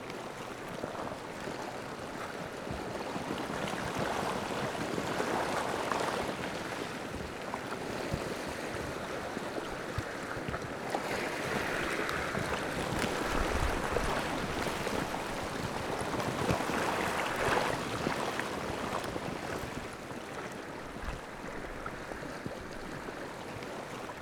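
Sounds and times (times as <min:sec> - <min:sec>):
water: 0:00.0 - 0:24.2.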